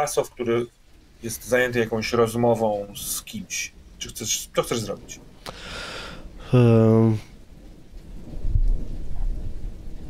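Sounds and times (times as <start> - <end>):
speech: 0.0 - 5.9, 6.5 - 7.3
rain falling: 0.0 - 10.0
rolling thunder: 3.7 - 10.0.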